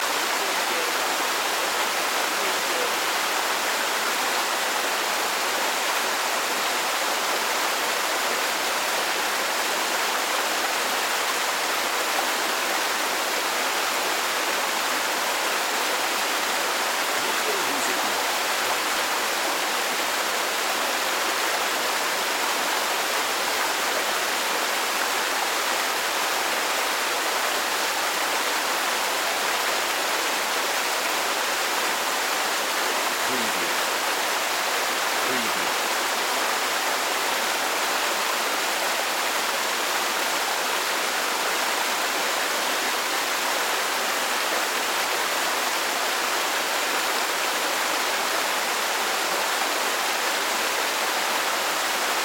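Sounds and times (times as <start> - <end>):
small fountain running: 0.1 - 52.2.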